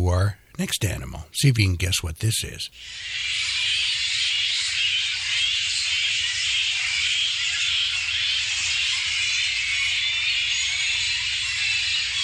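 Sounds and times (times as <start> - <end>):
speech: 0.1 - 3.6
large colony of flying fox bats screeching and chattering: 2.8 - 12.2.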